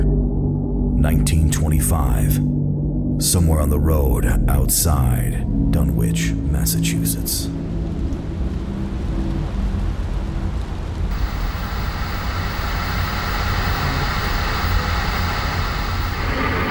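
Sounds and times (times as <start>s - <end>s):
deep continuous thunder rumble: 0.0s - 16.6s
speech: 1.0s - 2.6s, 3.2s - 7.8s
heavy rain pouring in a thunderstorm: 7.6s - 16.6s.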